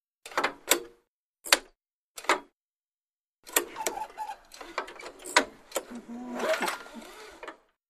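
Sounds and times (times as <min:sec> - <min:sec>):
small engine lawn mower start-up cord clicks, clanks and yanks: 0:03.6 - 0:07.7.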